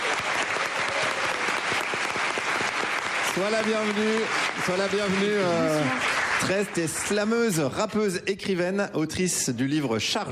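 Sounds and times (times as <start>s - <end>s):
audience applauding: 0.0s - 7.7s
speech: 3.4s - 10.3s.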